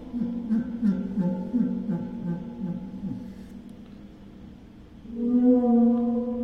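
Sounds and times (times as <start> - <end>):
waterphone played by dragging a super ball mallet across its resonating plate: 0.0 - 3.5, 5.1 - 6.4.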